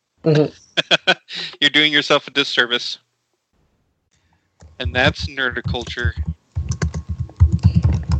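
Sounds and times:
speech: 0.2 - 1.0, 1.6 - 3.0, 4.8 - 6.4
rapid typing on a laptop keyboard: 4.6 - 8.1.

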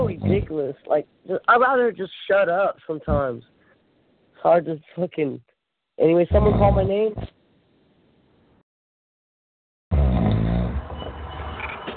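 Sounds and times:
person snoring through a tinny telephone line: 0.0 - 0.5, 6.3 - 7.3
speech: 0.3 - 3.6, 4.4 - 7.4.

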